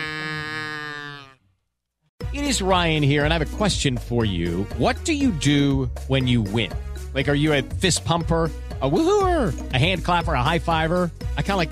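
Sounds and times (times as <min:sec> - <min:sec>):
game show buzzer: 0:00.0 - 0:01.2
speech: 0:02.4 - 0:11.7.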